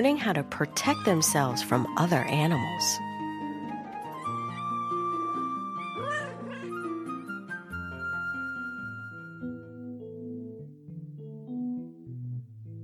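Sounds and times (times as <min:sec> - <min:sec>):
speech: 0:00.0 - 0:03.1
gentle music: 0:00.0 - 0:12.8
kittens meowing: 0:05.8 - 0:07.0.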